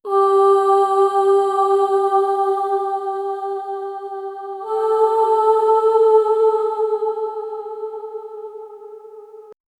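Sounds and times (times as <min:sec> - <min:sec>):
angelic female chorus singing: 0:00.0 - 0:09.6.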